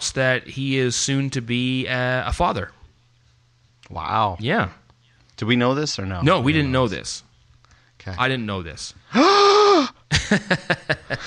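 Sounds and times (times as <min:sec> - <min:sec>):
speech: 0:00.1 - 0:02.8, 0:03.9 - 0:04.8, 0:05.4 - 0:07.3, 0:08.0 - 0:11.2
gasp of surprise: 0:09.1 - 0:10.1
laughter: 0:10.1 - 0:11.2.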